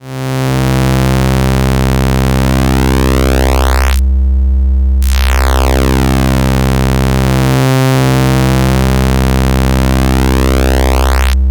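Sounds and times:
double synth saw wave: 0:00.1 - 0:04.0, 0:05.0 - 0:11.4.

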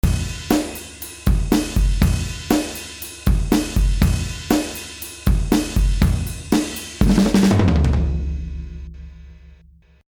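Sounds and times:
drum punch: 0:00.0 - 0:10.0.

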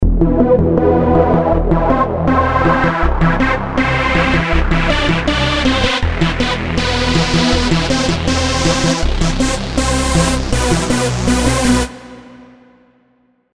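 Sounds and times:
club music loop: 0:00.0 - 0:12.3.

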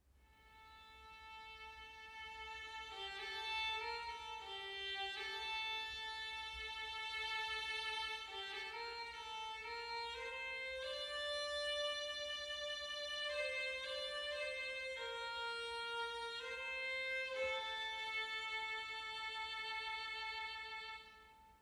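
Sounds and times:
music recorded with a Shure MV88 in mono figure-eight pattern: 0:00.0 - 0:21.6.

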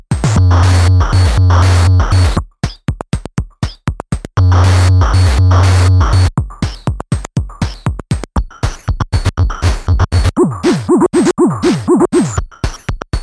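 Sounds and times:
synthesizer beat: 0:00.1 - 0:02.4, 0:04.4 - 0:13.1.

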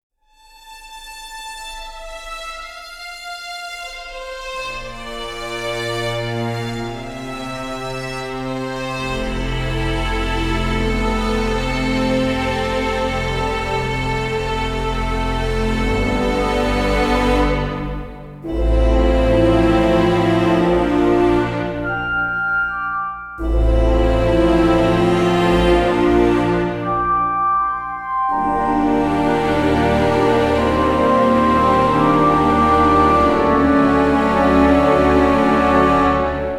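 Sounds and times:
sustained strings: 0:00.4 - 0:36.5
brass: 0:01.8 - 0:36.5
woodwinds: 0:04.4 - 0:36.5.

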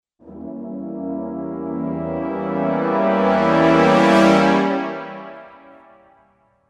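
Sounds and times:
brass ensemble playing: 0:00.2 - 0:06.1.

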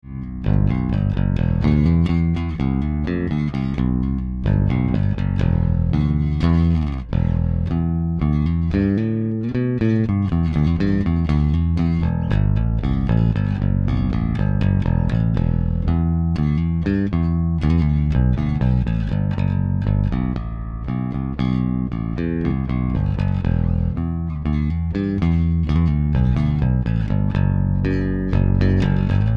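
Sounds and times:
raw electric guitar recording: 0:00.0 - 0:29.3.

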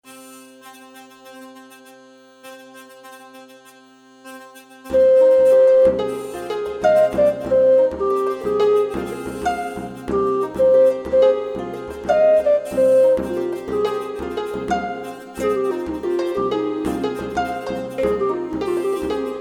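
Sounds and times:
hurdy-gurdy: 0:00.0 - 0:19.3
harp: 0:04.9 - 0:19.3.

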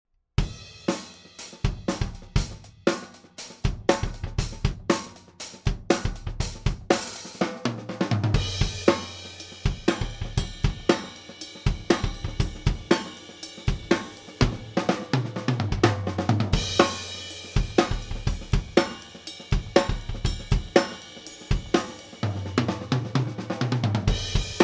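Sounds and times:
funky drum beat: 0:00.4 - 0:24.6.

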